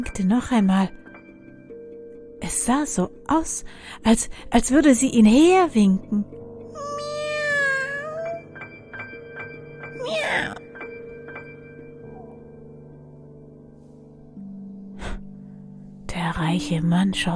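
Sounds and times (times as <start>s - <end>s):
speech: 0.0s - 1.0s, 2.4s - 6.4s, 16.5s - 17.3s
cat meowing: 6.8s - 8.4s, 10.0s - 10.6s.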